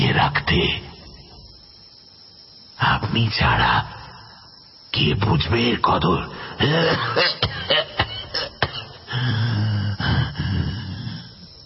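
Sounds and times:
speech: 0.3 - 0.9, 2.8 - 4.0, 4.9 - 8.5
old man coughing violently, short of breath: 6.6 - 10.7
old man's strained raspy wheezing breaths: 8.3 - 11.6.

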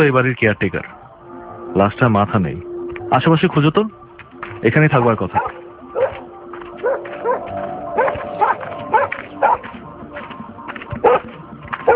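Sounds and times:
speech: 0.0 - 1.0, 1.7 - 4.0, 4.6 - 5.6
violent pet dog of a house barking: 5.4 - 6.2, 6.8 - 7.4, 8.0 - 9.6, 11.0 - 11.9.

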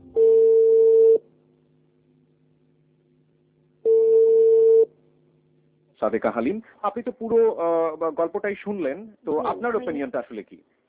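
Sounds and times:
telephone ringback tones while a call is placed: 0.0 - 1.2, 3.8 - 4.9
speech: 6.0 - 10.8.

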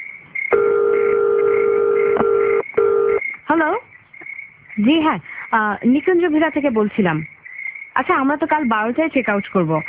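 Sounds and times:
long even electronic telephone tone: 0.5 - 3.2
telephone keypad beeps dialing a hotel reception number: 0.6 - 3.2
speech: 4.8 - 7.3, 8.0 - 9.8.

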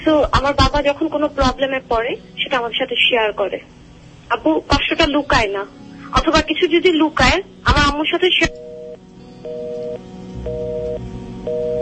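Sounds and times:
speech: 0.0 - 8.8
low hum: 0.0 - 11.8
telephone busy tone after a phone call disconnects: 8.5 - 11.8.

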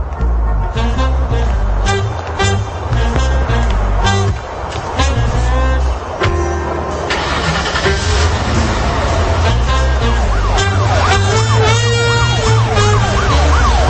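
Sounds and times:
low engine rumble: 0.0 - 13.8
police car siren wailing: 5.0 - 13.8.

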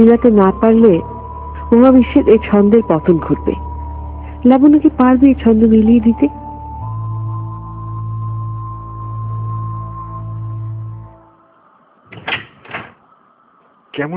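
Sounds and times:
speech: 0.0 - 1.1, 1.7 - 3.6, 4.4 - 6.4, 14.0 - 14.1
old door unopened for a long time creaking open: 12.1 - 13.0.

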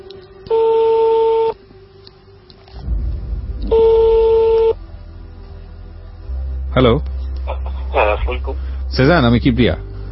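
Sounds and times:
electronic ringback tones of an outgoing phone call: 0.5 - 1.6, 3.7 - 4.8
low rumbling noise: 2.7 - 10.1
speech: 6.8 - 7.1, 8.3 - 9.9.

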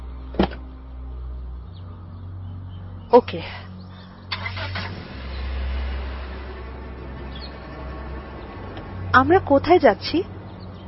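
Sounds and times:
speech: 3.1 - 3.7, 9.2 - 10.3
car engine cranking and starting then idling: 4.0 - 9.2.

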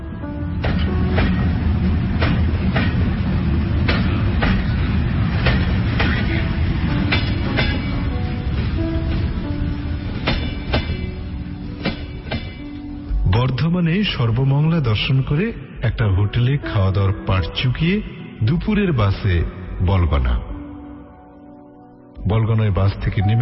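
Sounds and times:
local train running on rails from Howrah to Bardhaman: 0.0 - 15.4
speech: 13.8 - 20.5, 22.2 - 23.4.

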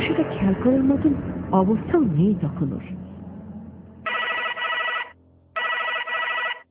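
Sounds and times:
speech: 0.4 - 3.0
mobile phone on a bed ringing with trilling electronic tones: 4.1 - 6.6.

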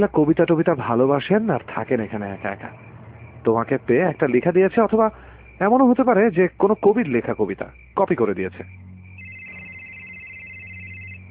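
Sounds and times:
speech: 0.0 - 8.9
telephone ringing with a high electronic tone: 9.2 - 11.2.

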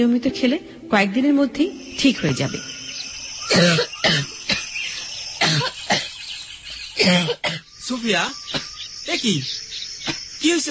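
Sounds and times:
speech: 0.0 - 2.7, 3.5 - 4.4, 7.1 - 10.6
person sick with a fever coughing: 3.5 - 4.7, 5.4 - 6.2, 7.0 - 7.7.

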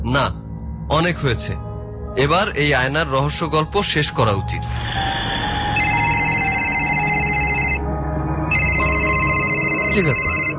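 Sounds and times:
speech: 0.1 - 5.0, 9.9 - 10.3
telephone ringing: 5.7 - 7.8, 8.5 - 10.5.

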